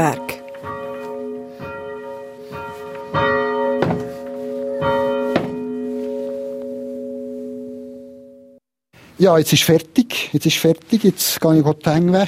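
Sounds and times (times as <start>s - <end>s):
speech: 0.0s - 0.3s, 9.2s - 12.2s
large church bell rung by hand: 0.0s - 8.6s.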